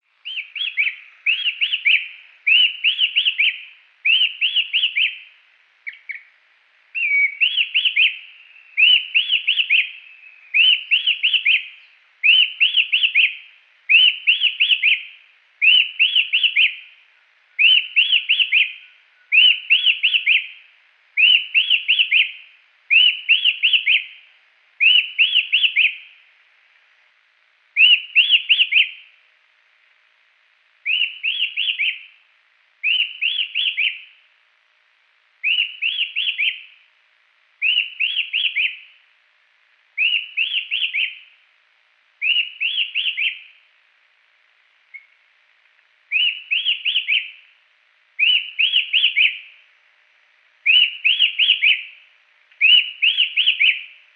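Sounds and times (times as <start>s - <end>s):
Attila phoenicurus singing: 0.2s - 26.3s, 27.8s - 29.2s, 30.8s - 32.2s, 32.8s - 34.3s, 35.4s - 36.9s, 37.6s - 39.1s, 40.0s - 41.4s, 42.2s - 43.7s, 44.9s - 45.2s, 46.1s - 47.6s, 48.2s - 49.7s, 50.6s - 54.1s.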